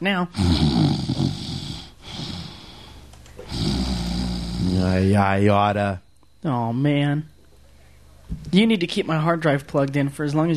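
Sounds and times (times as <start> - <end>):
speech: 0.0 - 1.2, 4.8 - 7.3, 8.3 - 10.5
loud snoring with rough rattling inhale: 0.3 - 5.2.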